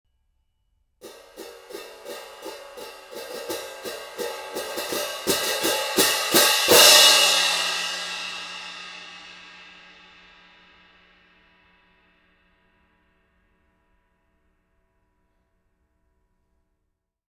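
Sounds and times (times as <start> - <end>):
16-inch Zildjian Z-Mac cymbal with grommets: 1.0 - 14.0.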